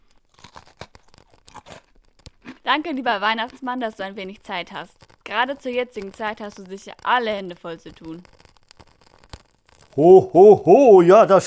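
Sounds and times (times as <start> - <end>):
cookies being bitten and chewed: 0.0 - 10.0
speech: 2.7 - 8.3, 10.0 - 11.4.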